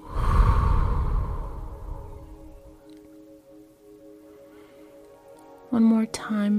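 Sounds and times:
deep exhalation during a guided breathing exercise: 0.0s - 2.8s
speech: 5.7s - 6.5s.

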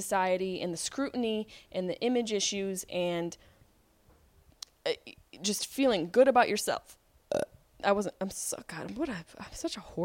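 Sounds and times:
speech: 0.0s - 3.5s, 4.8s - 10.0s
burp: 7.3s - 7.6s.

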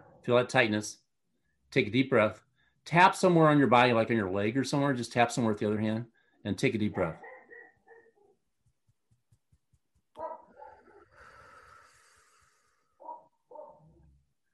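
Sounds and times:
speech: 0.2s - 1.0s, 1.7s - 7.2s
dogs barking: 7.0s - 8.3s, 10.2s - 11.1s, 13.0s - 14.0s.

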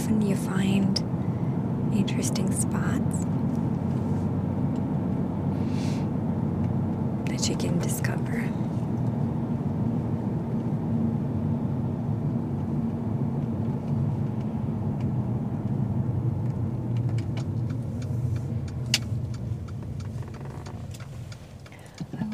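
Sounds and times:
engine and road rumble inside a moving car: 0.0s - 22.3s
speech: 2.0s - 3.3s, 7.4s - 8.6s
faint clicks and ticks: 16.4s - 22.3s.

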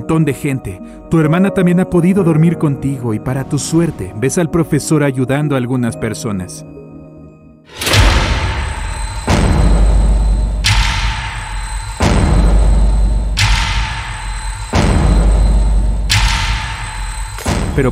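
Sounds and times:
speech: 0.1s - 6.8s
loud explosions with deep rumble: 7.7s - 17.8s.

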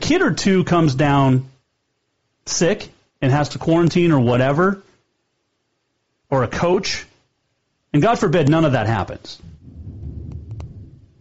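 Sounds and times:
speech: 0.1s - 1.5s, 2.5s - 4.9s, 6.3s - 7.1s, 7.9s - 9.5s
short sharp crackles or taps: 9.4s - 11.1s
thunder rumbling: 9.4s - 11.1s.

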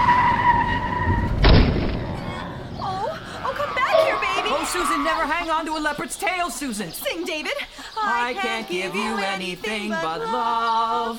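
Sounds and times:
car tire screech skidding to avoid a chicken truck: 0.0s - 1.4s, 2.0s - 5.4s
speech: 5.2s - 11.1s.

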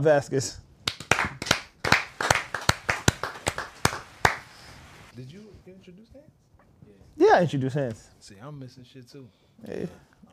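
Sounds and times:
speech: 0.0s - 0.6s, 7.4s - 10.1s
canned applause sound effect from button: 0.9s - 4.7s.

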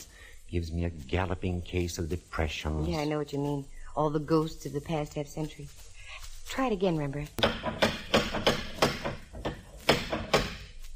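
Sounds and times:
speech: 0.5s - 5.9s, 6.5s - 8.0s
door knocker of an old house rapping on a door: 7.4s - 10.5s.

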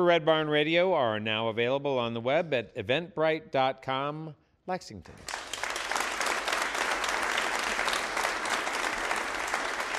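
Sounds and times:
speech: 0.0s - 5.5s
applause from a sizable audience: 5.2s - 9.9s.

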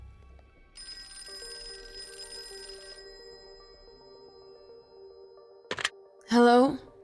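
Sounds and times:
telephone ringing with electronic tone: 0.8s - 5.9s
speech: 6.3s - 6.9s.

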